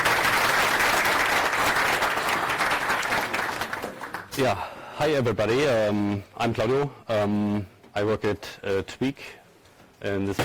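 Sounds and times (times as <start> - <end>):
sizable audience applauding: 0.0 - 4.3
speech: 4.4 - 9.4, 10.0 - 10.4.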